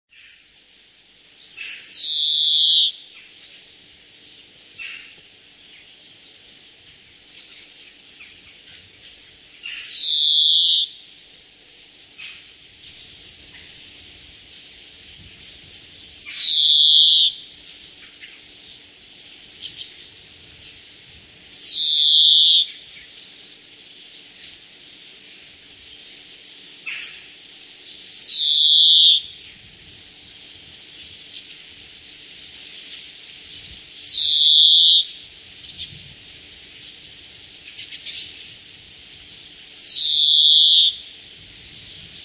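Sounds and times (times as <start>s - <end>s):
greenfinch calling: 1.5s - 3.4s, 7.4s - 11.1s, 15.6s - 18.9s, 21.5s - 23.6s, 26.8s - 29.4s, 32.8s - 35.2s, 39.7s - 42.2s.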